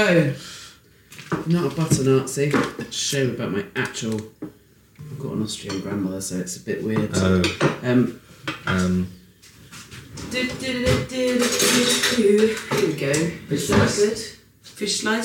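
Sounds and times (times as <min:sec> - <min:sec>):
speech: 0:00.0 - 0:00.6, 0:01.4 - 0:09.2, 0:10.2 - 0:15.2
fish slice and metal utensils scraping and clinking against a pan while dishing up eggs: 0:11.3 - 0:12.9.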